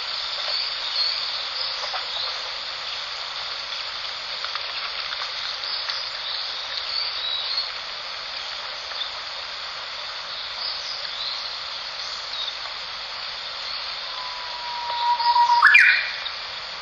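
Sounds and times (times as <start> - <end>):
steady background hiss: 0.0 - 16.8
Japanese bush warbler low whistle and fluttering upward flourish: 14.1 - 16.3.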